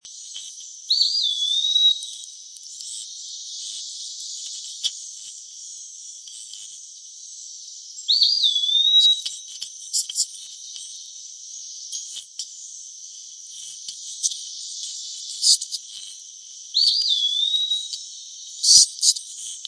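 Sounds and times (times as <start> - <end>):
Eastern Wood-Pewee song: 0.0 - 19.6.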